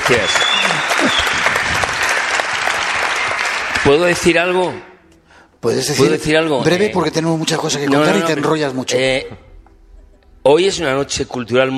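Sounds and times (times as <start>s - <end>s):
audience applause for a guest at a live Spanish event: 0.0s - 4.4s
speech: 0.1s - 1.3s, 3.8s - 4.9s, 5.6s - 9.5s, 10.4s - 11.7s.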